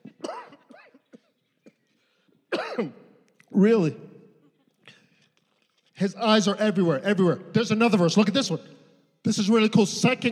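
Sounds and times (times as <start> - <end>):
person coughing after drinking: 0.0 - 3.1
speech: 2.8 - 4.0, 6.0 - 10.3.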